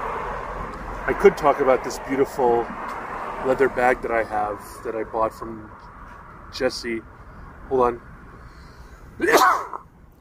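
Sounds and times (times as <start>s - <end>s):
speech: 1.1s - 5.9s, 6.5s - 7.1s, 7.7s - 8.1s, 9.2s - 9.9s
person sneezing: 9.2s - 9.8s.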